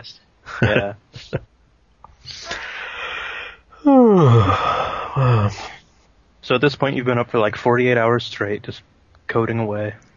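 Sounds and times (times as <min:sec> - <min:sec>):
speech: 0:00.0 - 0:01.5, 0:03.9 - 0:05.8, 0:06.4 - 0:10.1
people yawning: 0:03.8 - 0:05.7.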